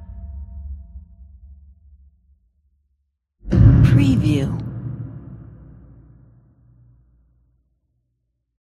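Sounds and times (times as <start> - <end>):
swoosh transition: 3.5 - 6.4.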